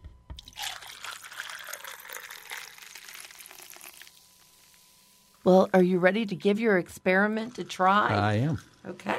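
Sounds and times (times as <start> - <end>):
soda poured over ice fizzing: 0.4 - 5.1
speech: 5.4 - 9.1.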